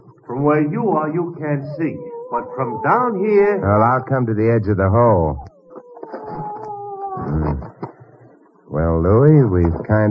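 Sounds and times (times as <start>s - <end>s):
speech: 0.3s - 5.5s, 8.8s - 10.1s
dog howling: 0.9s - 7.6s.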